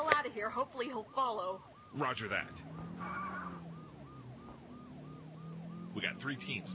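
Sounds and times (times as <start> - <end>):
car engine rumble: 0.0 - 6.7
speech: 0.4 - 3.3, 6.0 - 6.7
car tires squealing as it comes to a stop: 2.0 - 6.7.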